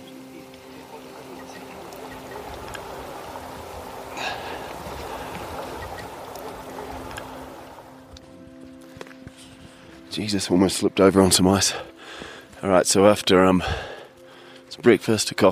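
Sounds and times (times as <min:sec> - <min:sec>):
small stream trickling: 0:00.0 - 0:08.1
water lapping at a lakeshore: 0:00.1 - 0:08.1
speech: 0:10.1 - 0:11.9, 0:12.6 - 0:13.9, 0:14.8 - 0:15.5.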